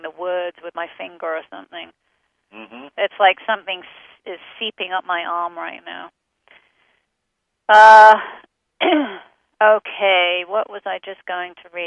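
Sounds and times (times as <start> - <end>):
speech: 0.0 - 6.2, 7.7 - 11.8
person acting out coughing and choking: 8.8 - 9.2.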